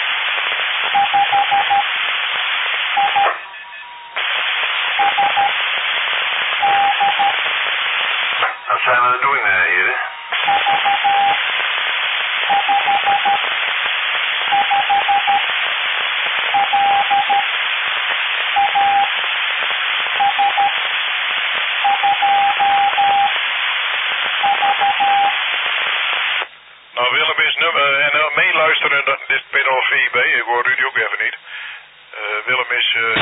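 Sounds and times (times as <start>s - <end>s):
loud radio hiss: 0.0s - 3.4s, 4.2s - 33.2s
morse code tones keyed over a radio channel: 0.9s - 1.9s, 3.0s - 3.4s, 5.0s - 5.6s, 6.6s - 7.4s, 10.4s - 11.4s, 12.5s - 13.4s, 14.5s - 15.5s, 16.5s - 17.5s, 18.6s - 19.2s, 20.2s - 20.8s, 21.8s - 23.4s, 24.4s - 25.4s.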